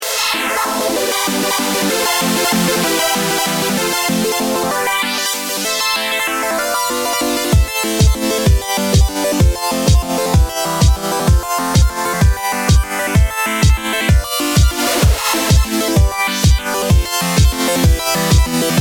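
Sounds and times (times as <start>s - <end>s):
ultra saw trance music: 0.0s - 18.7s.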